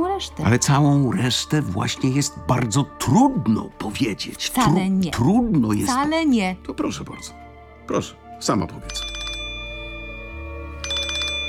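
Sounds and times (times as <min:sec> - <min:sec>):
speech: 0:00.2 - 0:09.2
electronic telephone ringtone: 0:08.9 - 0:11.4.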